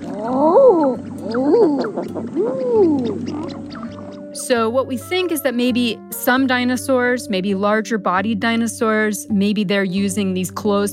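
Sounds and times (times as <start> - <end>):
eider duck cooing: 0.0 - 4.4
speech: 4.5 - 10.9.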